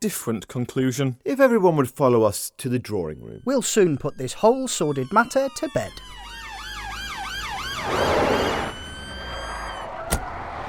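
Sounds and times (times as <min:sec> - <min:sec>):
speech: 0:00.0 - 0:06.2
police siren wailing in rising and falling sweeps: 0:03.4 - 0:10.6
rumbling engine of a passing police vehicle: 0:06.0 - 0:10.6.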